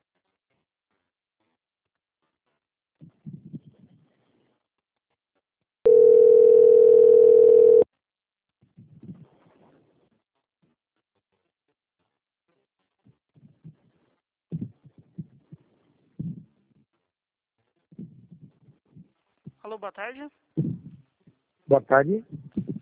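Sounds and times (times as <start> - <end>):
telephone tone while a call is being transferred: 5.9 - 7.8
speech: 19.8 - 20.4, 21.7 - 22.4.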